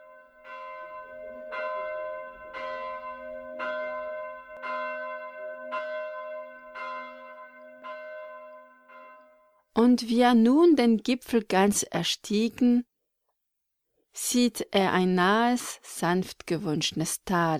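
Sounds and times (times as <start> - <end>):
church bell tolling: 0.0 - 9.7
speech: 9.8 - 12.9, 14.2 - 17.5.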